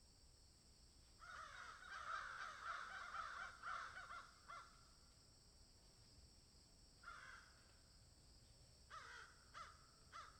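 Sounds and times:
crow cawing: 1.2 - 4.8, 7.0 - 7.6, 8.9 - 10.3.

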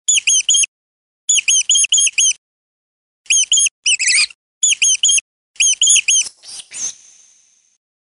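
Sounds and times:
mouse squeaks: 0.1 - 0.7, 1.3 - 2.4, 3.3 - 7.0.

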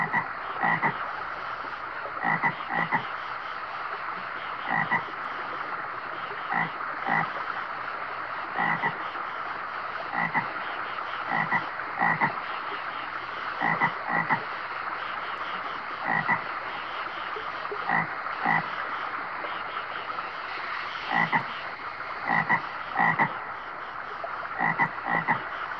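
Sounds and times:
frogs croaking in a chorus: 0.0 - 25.7.

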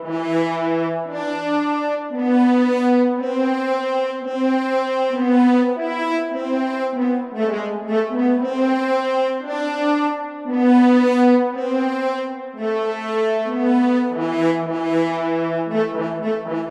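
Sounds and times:
horns playing a medieval melody: 0.0 - 16.6.

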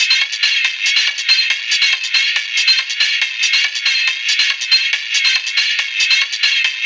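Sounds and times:
metallic percussion: 0.0 - 6.8.

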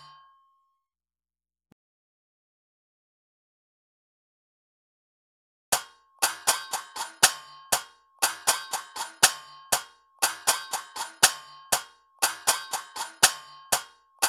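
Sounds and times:
hand cymbals percussion loop at 120 BPM: 5.7 - 14.2.

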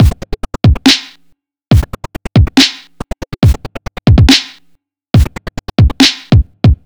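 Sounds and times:
gated drum beat at 140 bpm: 0.0 - 1.1, 1.7 - 2.8, 3.4 - 4.6, 5.2 - 6.8.

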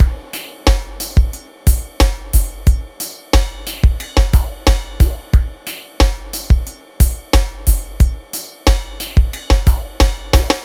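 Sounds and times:
chillout music: 0.0 - 10.6.

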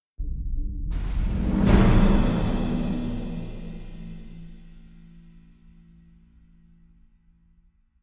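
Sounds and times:
drum ensemble playing a beat for film music: 1.0 - 4.6.

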